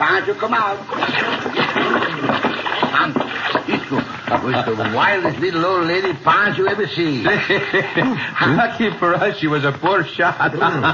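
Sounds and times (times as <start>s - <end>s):
speech: 0.2s - 2.2s, 3.0s - 10.9s
water sloshing and splashing as a man climbs out of a water barrel: 0.4s - 7.3s
laughter: 6.6s - 9.4s, 10.2s - 10.9s.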